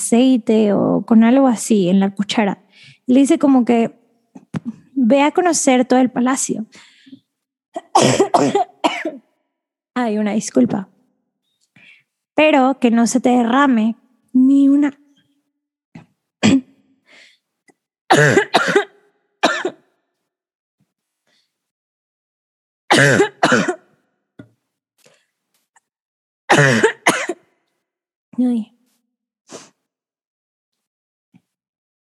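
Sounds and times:
speech: 0:00.0 - 0:04.0, 0:04.6 - 0:09.2, 0:10.0 - 0:11.0, 0:12.4 - 0:15.0, 0:18.1 - 0:18.4, 0:23.0 - 0:23.8
person clearing throat: 0:07.8 - 0:09.2, 0:16.4 - 0:16.7, 0:18.1 - 0:19.8, 0:22.9 - 0:23.9, 0:26.5 - 0:27.4
person coughing: 0:07.8 - 0:09.2, 0:16.4 - 0:16.7, 0:18.1 - 0:19.8, 0:22.9 - 0:23.9, 0:26.5 - 0:27.4.

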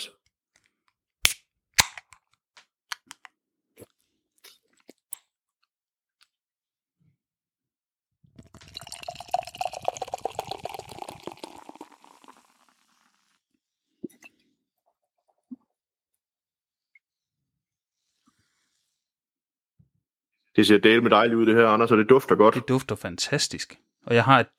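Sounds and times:
beer can being opened: 0:01.2 - 0:02.2
beer fizzy pouring into a glass: 0:08.4 - 0:13.4
speech: 0:20.6 - 0:24.5.

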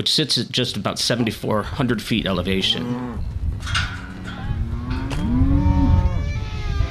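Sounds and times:
speech: 0:00.0 - 0:04.0
steady rumbling outdoor background: 0:01.6 - 0:06.9
cattle mooing: 0:02.6 - 0:03.3, 0:04.1 - 0:06.9.

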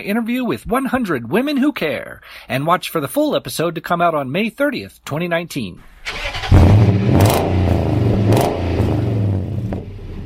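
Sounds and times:
speech: 0:00.0 - 0:07.6
truck engine starting and revving: 0:05.8 - 0:10.2.

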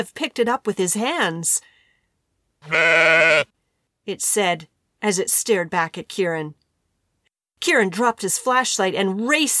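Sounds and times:
speech: 0:00.0 - 0:01.7, 0:02.6 - 0:06.6, 0:07.6 - 0:09.5
very small sheep bleating: 0:02.6 - 0:03.5.

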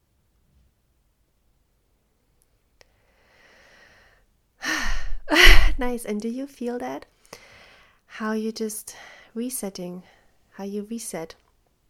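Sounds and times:
slow exhale during a breathing exercise: 0:02.9 - 0:05.8
speech: 0:05.8 - 0:07.2, 0:08.2 - 0:11.4.

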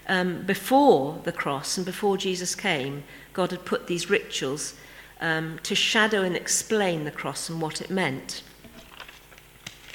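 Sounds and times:
speech: 0:00.1 - 0:08.5
paper rustling while someone searches for notes: 0:08.8 - 0:09.9.

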